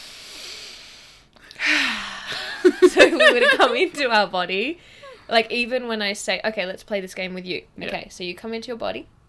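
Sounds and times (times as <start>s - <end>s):
person taking a deep breath: 0.0s - 2.5s
person exhaling with a voiced sigh: 1.6s - 2.5s
laughter: 2.4s - 3.9s
speech: 2.6s - 9.2s.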